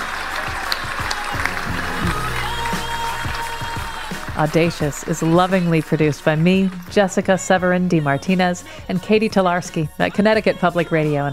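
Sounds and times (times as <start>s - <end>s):
crowd clapping: 0.0s - 7.7s
low piano notes: 1.4s - 5.3s
speech: 4.4s - 11.3s.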